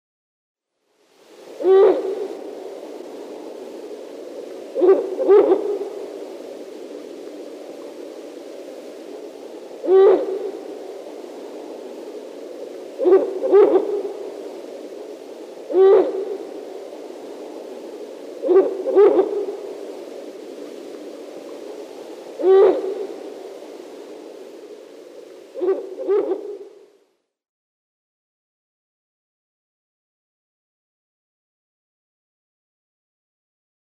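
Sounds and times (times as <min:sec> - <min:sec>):
female Ural owl display call: 0:01.6 - 0:02.9, 0:04.7 - 0:06.4, 0:09.7 - 0:11.8, 0:12.9 - 0:14.7, 0:15.6 - 0:17.7, 0:18.4 - 0:20.2, 0:21.7 - 0:23.7, 0:25.5 - 0:26.8.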